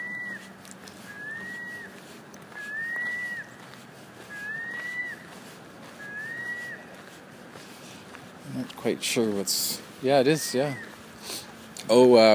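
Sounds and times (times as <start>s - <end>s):
young gull giving thin whistled calls: 0.0s - 7.0s, 10.4s - 11.5s
outdoor noise: 0.0s - 12.3s
speech: 8.6s - 12.3s.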